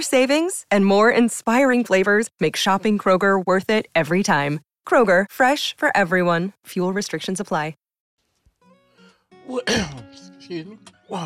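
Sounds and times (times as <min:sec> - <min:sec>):
speech: 0:00.0 - 0:07.8, 0:09.5 - 0:11.2
harsh cough: 0:09.6 - 0:10.1.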